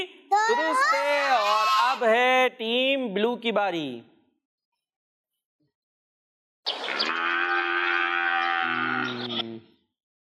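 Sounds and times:
speech: 0:00.0 - 0:04.1
cow mooing: 0:07.0 - 0:09.4.

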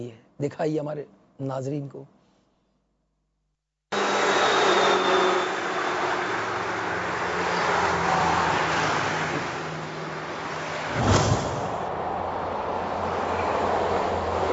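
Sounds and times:
speech: 0:00.0 - 0:02.2
road traffic roar at an intersection: 0:03.9 - 0:14.5
car engine and tires rushing through an intersection: 0:04.0 - 0:14.5.

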